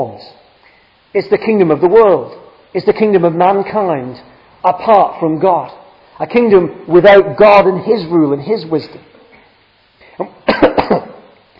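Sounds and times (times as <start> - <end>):
speech: 0.0 - 0.4, 1.1 - 9.1, 10.2 - 10.7
person clearing throat: 10.0 - 11.3
person coughing: 10.1 - 11.3.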